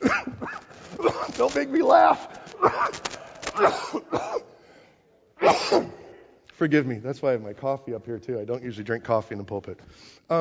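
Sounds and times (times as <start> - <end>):
person coughing: 0.0 - 4.6, 5.4 - 6.2
speech: 1.4 - 4.5, 5.4 - 6.0, 6.6 - 10.3.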